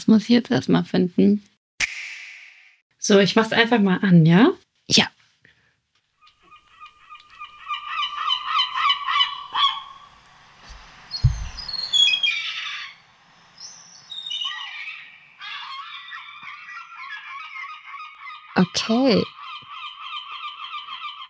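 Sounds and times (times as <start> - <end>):
speech: 0.0 - 1.5, 3.0 - 5.2, 18.8 - 19.4
harsh nasal seagull calls played back from a phone: 6.2 - 10.1, 11.9 - 13.0, 14.2 - 21.2
short rumbling thud: 10.7 - 11.8.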